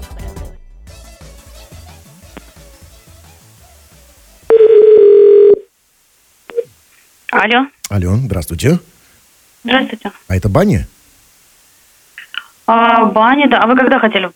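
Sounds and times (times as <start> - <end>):
steady telephone tone: 4.5 - 5.7
speech: 7.4 - 8.9, 9.6 - 11.0, 12.7 - 14.3.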